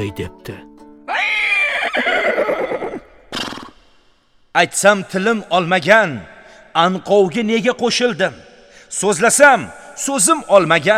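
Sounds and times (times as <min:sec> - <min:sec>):
speech: 0:00.0 - 0:00.7, 0:04.5 - 0:10.9
horse neighing: 0:01.1 - 0:03.9.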